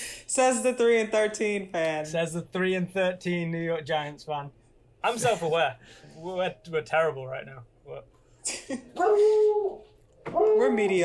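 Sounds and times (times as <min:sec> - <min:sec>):
speech: 0:00.4 - 0:11.0
dog yipping: 0:09.0 - 0:10.8.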